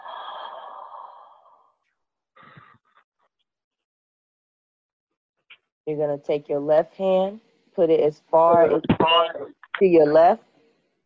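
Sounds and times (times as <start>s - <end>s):
person inhaling deeply during a breathing exercise: 0.0s - 1.8s
speech: 5.9s - 10.5s.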